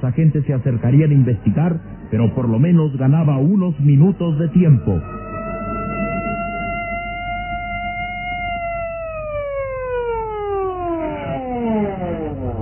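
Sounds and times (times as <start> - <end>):
speech: 0.0 - 5.2
police car siren wailing: 1.6 - 12.5.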